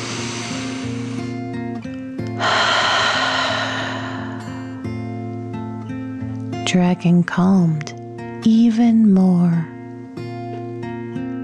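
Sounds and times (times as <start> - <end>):
slow deep breath in and out: 0.0 - 5.1
speech: 6.7 - 9.7.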